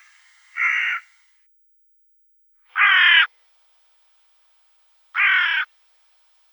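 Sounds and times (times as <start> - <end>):
Hooded crow giving harsh hoarse caws: 0.0 - 1.2, 2.7 - 3.3, 5.2 - 5.7.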